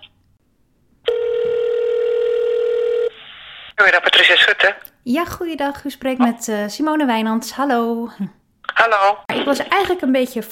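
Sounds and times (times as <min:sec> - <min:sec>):
steady telephone tone while a call is transferred: 0:01.1 - 0:03.2
speech: 0:03.8 - 0:10.5.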